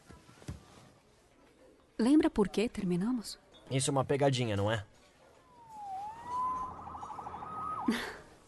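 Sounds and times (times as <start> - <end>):
speech: 2.0 - 5.0
emergency vehicle siren wailing and yelping: 5.4 - 8.3
low traffic rumble: 5.4 - 8.4
laughter: 7.6 - 8.3.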